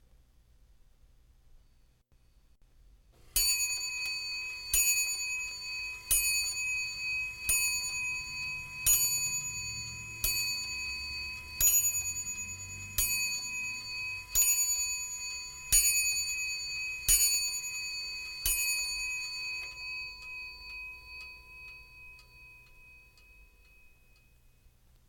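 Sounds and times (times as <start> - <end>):
grandfather clock striking: 3.4 - 21.8.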